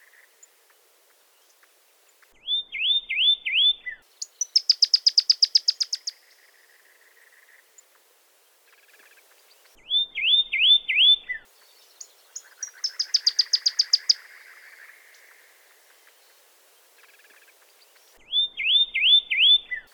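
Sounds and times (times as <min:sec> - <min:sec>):
Pyrrhuloxia singing slurred whistles and sharp notes: 0:02.4 - 0:06.4, 0:09.8 - 0:15.0, 0:18.0 - 0:19.9.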